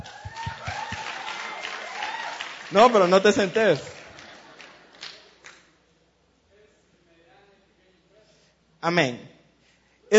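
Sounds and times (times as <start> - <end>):
audience applauding: 0.0 - 5.7
heavy rhythmic claps: 0.0 - 5.7
speech: 2.7 - 4.0, 8.8 - 9.3.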